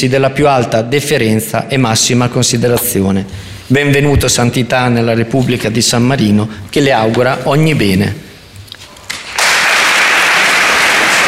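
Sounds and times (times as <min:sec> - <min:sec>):
speech: 0:00.0 - 0:08.3
large crowd applauding after a speech: 0:09.1 - 0:11.2.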